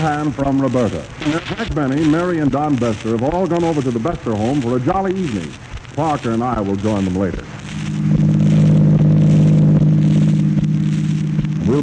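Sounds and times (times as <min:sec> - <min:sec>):
speech: 0:00.0 - 0:07.9, 0:11.7 - 0:11.8
car engine droning while driving: 0:07.7 - 0:11.8.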